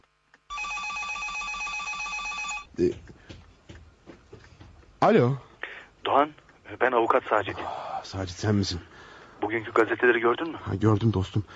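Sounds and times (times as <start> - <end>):
telephone bell ringing: 0.5 - 2.7
speech: 2.8 - 3.0, 5.0 - 5.5, 6.1 - 11.5.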